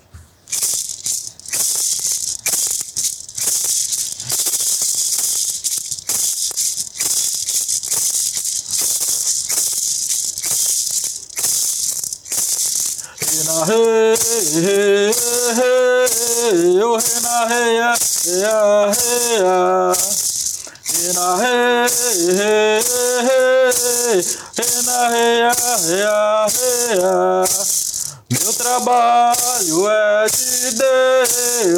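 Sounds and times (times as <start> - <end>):
gourd maraca rattle being shaken: 0.4 - 31.7
person singing: 13.2 - 31.7.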